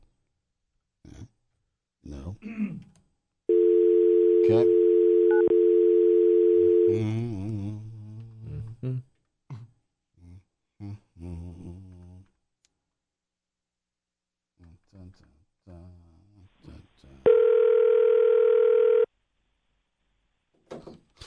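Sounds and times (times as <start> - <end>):
telephone ringback tone from an unanswered call: 3.5 - 6.9, 17.3 - 19.1.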